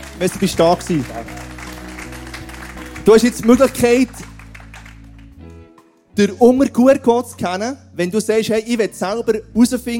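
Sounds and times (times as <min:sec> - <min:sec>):
audience clapping: 0:00.0 - 0:06.0
speech: 0:00.2 - 0:01.4, 0:03.1 - 0:04.3, 0:06.2 - 0:09.9.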